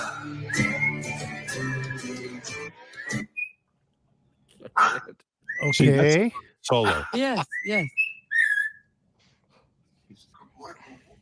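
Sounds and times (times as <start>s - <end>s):
parrot whistling along to music: 0.0s - 2.3s, 2.9s - 3.6s, 4.9s - 6.0s, 7.0s - 8.9s
music: 0.0s - 3.4s
speech: 5.7s - 8.0s.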